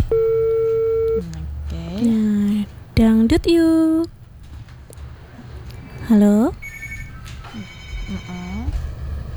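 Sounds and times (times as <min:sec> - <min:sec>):
telephone busy tone after a call is cut off: 0:00.0 - 0:01.2
speech: 0:03.0 - 0:04.1, 0:06.1 - 0:06.6, 0:07.6 - 0:08.8.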